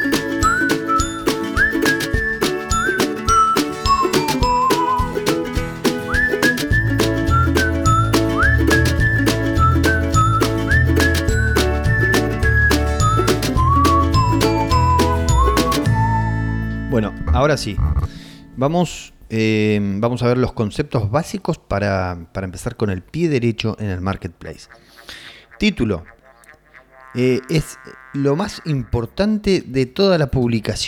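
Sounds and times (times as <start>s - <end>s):
cheerful whistled tune: 0.0s - 18.4s
deeper bass line: 0.0s - 19.2s
musical backing: 0.0s - 19.3s
speech: 17.4s - 26.2s, 27.1s - 30.8s.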